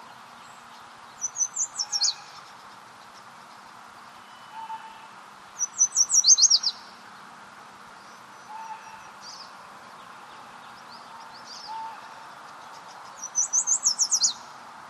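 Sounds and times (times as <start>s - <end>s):
yellow warbler, Dendroica petechia, singing while foraging in a salmonberry thicket in Sitka: 0.0s - 4.6s, 5.5s - 14.8s.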